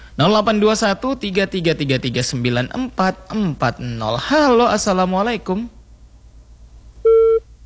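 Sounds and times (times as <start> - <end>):
faint low hum: 0.0 - 7.6
speech: 0.2 - 5.8
telephone busy tone after a phone call drops: 7.0 - 7.6.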